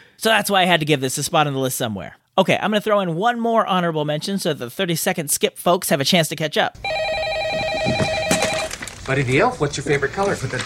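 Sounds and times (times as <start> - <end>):
speech: 0.2 - 7.2, 9.1 - 10.6
telephone ringing with a trilling electronic tone: 6.8 - 8.8.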